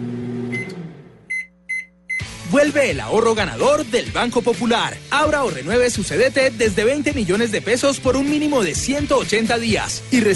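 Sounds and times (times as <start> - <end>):
microwave oven short electronic beeps: 0.5 - 2.3
speech: 2.7 - 10.3.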